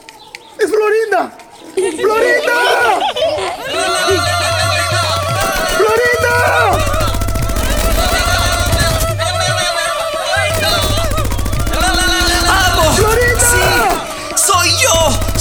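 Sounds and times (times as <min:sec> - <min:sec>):
speech: 0:00.8 - 0:03.9
laughter: 0:01.6 - 0:15.3
singing voices: 0:01.7 - 0:15.3
celebratory rifle gunfire into the air in Pakistan: 0:04.6 - 0:15.3.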